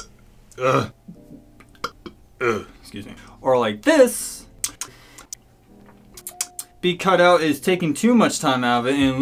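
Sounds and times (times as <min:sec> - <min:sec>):
person burping: 0:00.0 - 0:02.8
speech: 0:00.6 - 0:01.0, 0:02.4 - 0:04.5, 0:06.8 - 0:09.2
faint mouth clicks: 0:04.6 - 0:05.4, 0:06.2 - 0:06.8.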